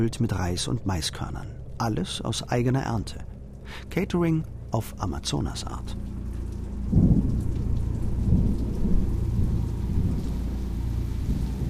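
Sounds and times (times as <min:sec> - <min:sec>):
speech: 0:00.0 - 0:06.1
heavy rain: 0:05.8 - 0:11.6
distant low thunder rumbling: 0:06.0 - 0:11.6.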